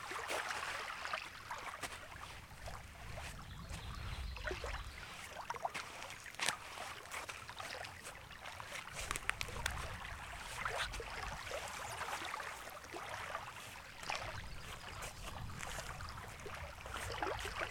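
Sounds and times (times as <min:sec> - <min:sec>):
footsteps walking near a lake: 0:00.1 - 0:17.7.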